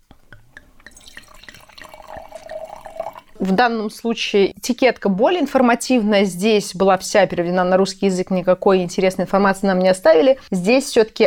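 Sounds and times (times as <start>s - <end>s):
Rioja wine pouring into a glass: 0.6s - 3.5s
speech: 3.4s - 11.2s.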